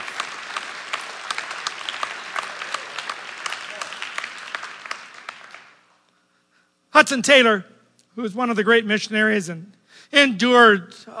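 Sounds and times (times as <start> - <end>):
church audience clapping: 0.0 - 6.0
speech: 7.0 - 11.1.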